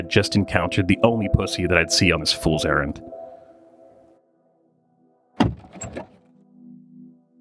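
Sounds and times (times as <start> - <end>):
speech: 0.0 - 3.2
car door opening and shutting: 5.4 - 6.4.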